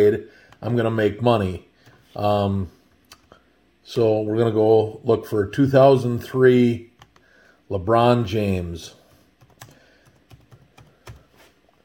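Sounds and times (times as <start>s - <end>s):
speech: 0.0s - 2.8s, 3.9s - 6.9s, 7.7s - 9.0s
soft hiss: 0.0s - 11.8s
typing on a computer keyboard: 9.4s - 11.3s.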